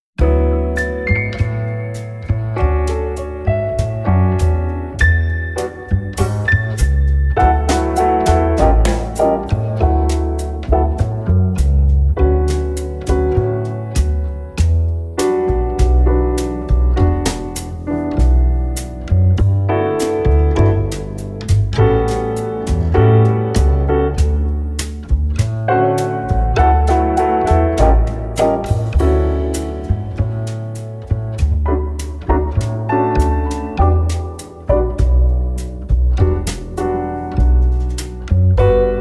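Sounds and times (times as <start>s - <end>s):
mid tempo samba: 0.2s - 38.9s.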